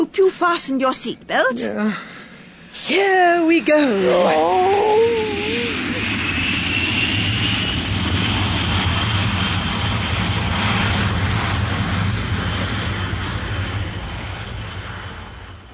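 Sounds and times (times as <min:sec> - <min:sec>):
speech: 0:00.2 - 0:02.2, 0:02.8 - 0:05.1
propeller airplane engine roaring during takeoff: 0:01.7 - 0:15.7
rushing wash of air: 0:03.9 - 0:15.6.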